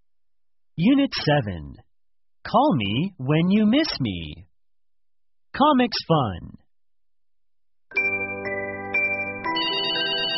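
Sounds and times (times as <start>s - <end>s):
speech: 0.8s - 4.5s, 5.5s - 6.6s
telephone ringtone electronic melody: 7.9s - 10.3s.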